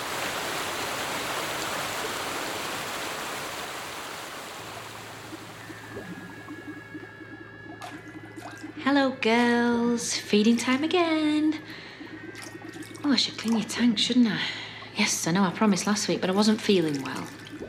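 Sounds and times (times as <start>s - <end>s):
river water rushing: 0.0s - 5.6s
low hum: 4.2s - 17.6s
faint tonal lines: 4.8s - 17.6s
speech: 8.8s - 11.8s, 13.1s - 17.4s.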